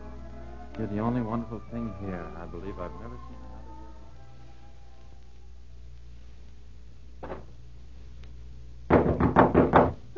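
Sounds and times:
speech: 0.8 - 3.6
firm knocks on a wooden door: 8.9 - 10.0.

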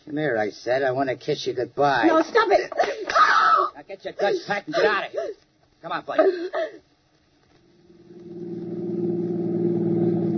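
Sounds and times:
speech: 0.1 - 6.8
car engine starting and revving: 7.8 - 10.3.

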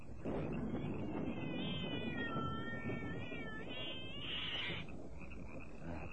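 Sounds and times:
rumbling noise: 0.0 - 6.1
cat meowing in a long wavering yowl: 1.0 - 4.8.

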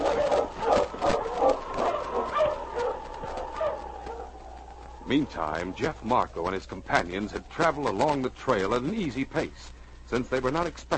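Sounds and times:
husky sled dogs barking and yipping as team starts: 0.0 - 5.8
speech: 5.1 - 10.9.

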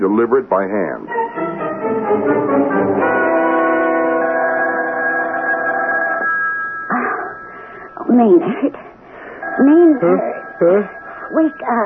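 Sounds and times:
speech: 0.0 - 1.2, 2.0 - 3.1, 8.1 - 8.9, 9.6 - 11.8
telephone ringing with a bright sustained bell tone: 3.0 - 11.8.

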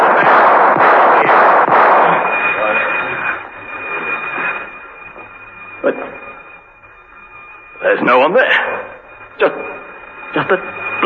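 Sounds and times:
warning gunshots fired during a chase: 0.0 - 3.3
busy broadband noise: 0.0 - 11.0
rumble: 0.0 - 11.0
steady high tone: 0.0 - 11.0
speech: 8.1 - 8.7, 9.4 - 9.7, 10.3 - 10.8.

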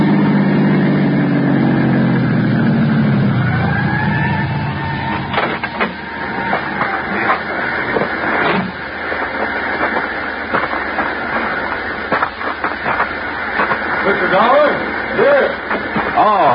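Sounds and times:
ambulance engine revving and pulling away from the curb: 0.0 - 16.5.

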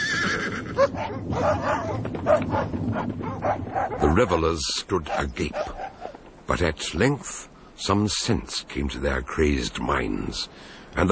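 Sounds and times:
horse-like whinny: 0.0 - 1.0
hounds barking and baying: 0.7 - 6.3
speech: 1.2 - 5.8, 6.5 - 11.1.

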